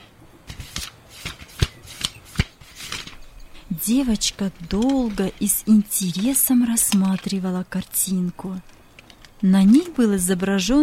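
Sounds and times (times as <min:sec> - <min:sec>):
book pages flipped through with dry papery rustling: 0:00.5 - 0:07.5
speech: 0:03.8 - 0:08.7, 0:09.4 - 0:10.8.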